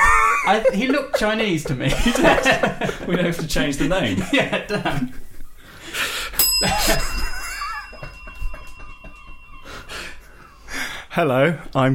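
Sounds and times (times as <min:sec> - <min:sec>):
laughter: 0:00.0 - 0:05.4, 0:06.6 - 0:10.6
speech: 0:00.5 - 0:05.2, 0:06.6 - 0:07.2, 0:11.2 - 0:11.9
push bell ringing: 0:06.4 - 0:10.7.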